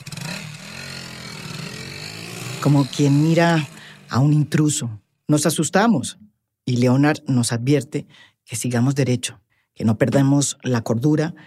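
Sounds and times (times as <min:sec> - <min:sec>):
motorcycle engines rumbling: 0:00.0 - 0:05.1
speech: 0:02.6 - 0:11.4.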